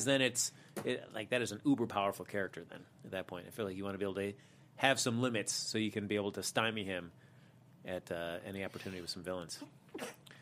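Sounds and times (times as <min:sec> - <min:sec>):
speech: 0:00.0 - 0:07.2, 0:07.8 - 0:10.2
sneeze: 0:09.9 - 0:10.2.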